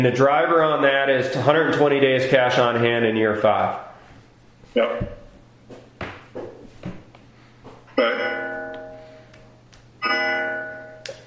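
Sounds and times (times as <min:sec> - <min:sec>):
speech: 0:00.0 - 0:03.9, 0:04.7 - 0:05.2
clock chiming the hour during a board meeting: 0:08.0 - 0:09.1, 0:10.0 - 0:11.1.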